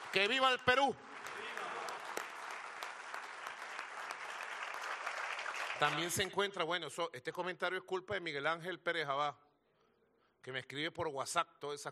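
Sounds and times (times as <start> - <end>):
crowd applause: 0.0 - 6.3
speech: 0.1 - 1.1, 5.8 - 9.4, 10.4 - 11.9.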